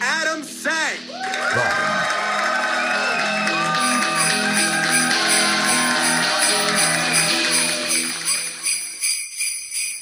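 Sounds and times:
festive cheering and whooping: 1.1s - 8.8s
sleigh bells jingling: 3.8s - 10.0s.

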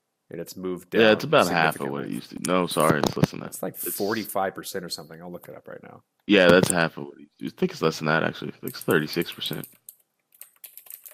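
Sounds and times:
speech: 0.3s - 9.8s
typing on a computer keyboard: 8.7s - 11.1s.

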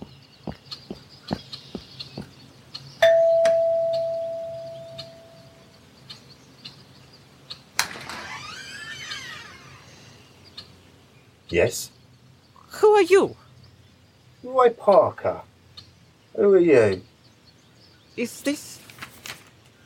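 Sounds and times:
doorbell ding at a house door: 3.0s - 5.1s
brief scraping creaking noise: 7.8s - 10.2s
speech: 11.5s - 12.0s, 13.0s - 13.4s, 14.4s - 15.5s, 16.4s - 17.1s, 18.2s - 18.7s.

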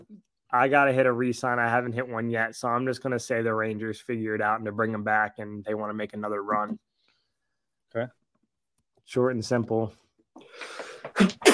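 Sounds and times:
speech: 0.5s - 6.9s, 7.9s - 8.2s, 9.1s - 10.0s
sniffly intake: 10.4s - 11.5s
sharp loud sneezes: 10.7s - 11.5s.

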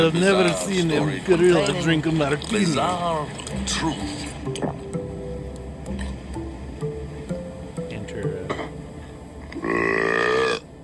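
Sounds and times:
speech: 0.0s - 4.8s
long loud exaggerated burp with wobbling pitch: 8.5s - 8.8s, 9.5s - 10.7s.

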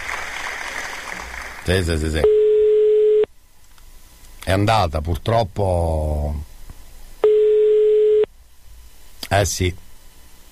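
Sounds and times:
speech: 1.7s - 2.4s, 4.5s - 6.5s, 9.3s - 9.8s
telephone ringback tone: 2.2s - 3.3s, 7.2s - 8.3s.

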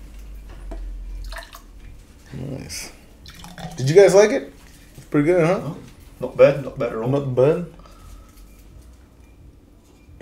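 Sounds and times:
speech: 2.3s - 3.0s, 3.7s - 7.8s
beer glugging and splashing out of a can: 3.3s - 3.9s.

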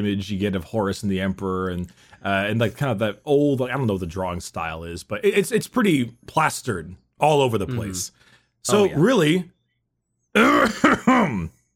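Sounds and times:
speech: 0.0s - 9.6s, 10.4s - 11.6s
person clearing throat: 10.4s - 11.5s
person coughing: 10.4s - 11.5s.

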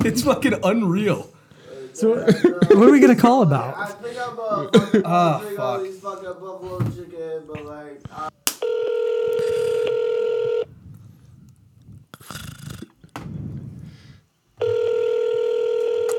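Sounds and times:
speech: 0.0s - 1.4s, 2.0s - 8.3s
laughter: 2.0s - 3.3s, 4.2s - 5.6s
telephone line tones: 8.6s - 10.7s, 14.6s - 16.1s.

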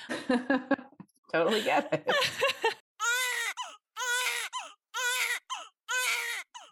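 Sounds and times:
speech: 0.3s - 0.8s, 1.5s - 2.5s
laughter: 1.5s - 2.8s
baby crying: 3.0s - 6.7s
baby's gasping intake of breath: 3.5s - 3.9s, 4.5s - 6.7s.

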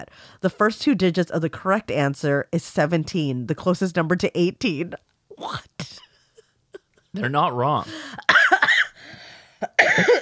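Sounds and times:
speech: 0.0s - 6.0s, 7.1s - 8.4s, 10.0s - 10.2s
person coughing in harsh raspy bursts: 8.2s - 9.0s, 9.6s - 10.2s.

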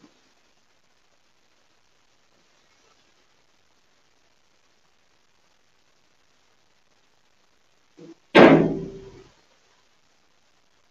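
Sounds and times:
door swinging shut with a heavy slam: 8.4s - 9.2s.

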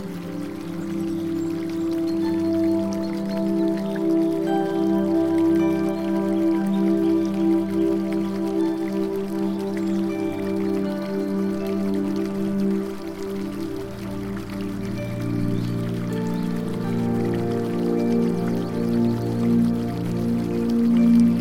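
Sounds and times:
continuous trickle of falling water in a botanical garden: 0.0s - 21.4s
soft sustained music with long held low and middle notes: 0.0s - 21.4s.

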